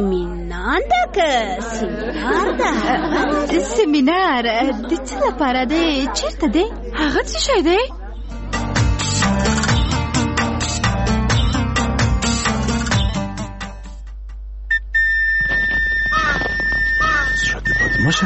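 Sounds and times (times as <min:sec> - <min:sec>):
speech: 0:00.0 - 0:08.0, 0:18.1 - 0:18.2
laughter: 0:01.6 - 0:08.3, 0:17.2 - 0:18.2
rhythmic music: 0:08.2 - 0:14.5
shrill whistle: 0:14.7 - 0:18.2.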